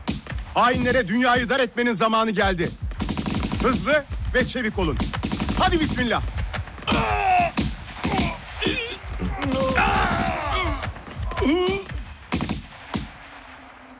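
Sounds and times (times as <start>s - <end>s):
loud gunfire bursts in a firefight between soldiers: 0.0s - 1.8s, 2.4s - 13.9s
speech: 0.6s - 2.8s, 3.6s - 7.2s
soldiers shouting: 6.8s - 12.1s
people groaning: 6.8s - 12.2s.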